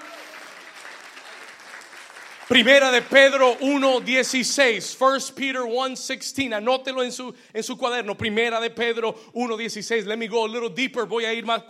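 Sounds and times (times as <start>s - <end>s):
audience applauding: 0.0s - 4.8s
speech: 2.5s - 11.6s.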